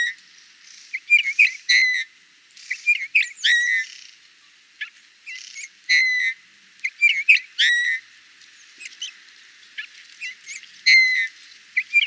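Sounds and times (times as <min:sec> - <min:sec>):
faint hiss: 0:00.0 - 0:12.0
Eurasian bullfinch whistled calls in Burgundy France: 0:00.9 - 0:04.0, 0:05.3 - 0:08.0, 0:10.2 - 0:12.0.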